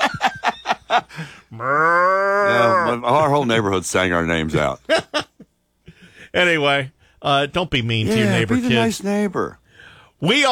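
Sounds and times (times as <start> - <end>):
person laughing rhythmically: 0.0 - 1.3
person mimicking a cow's moo: 1.6 - 3.0
speech: 2.9 - 5.2, 6.4 - 9.6, 10.2 - 10.5.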